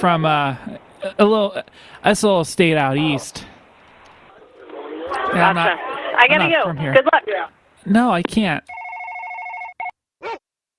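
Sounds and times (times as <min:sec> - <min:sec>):
speech: 0:00.0 - 0:03.5, 0:05.3 - 0:08.8
telephone ringing heard over a phone call: 0:08.7 - 0:09.9.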